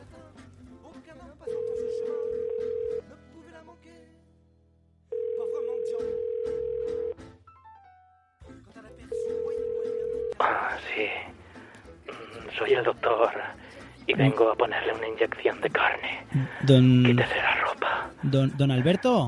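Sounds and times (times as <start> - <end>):
steady electronic telephone tone of an outgoing live call: 1.5 - 3.0, 5.1 - 7.2, 9.1 - 10.4
speech: 12.6 - 17.6, 18.2 - 19.2.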